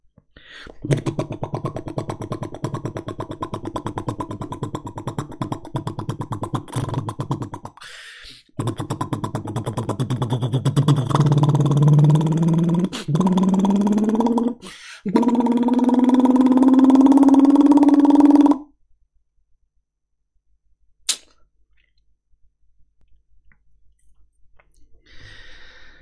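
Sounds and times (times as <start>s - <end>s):
man's voice imitating a motorcycle engine revving: 0.8s - 7.8s, 8.5s - 18.7s.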